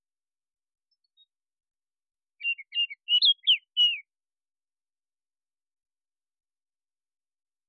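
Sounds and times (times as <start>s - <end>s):
Baltimore oriole mellow whistles: 2.4s - 4.1s.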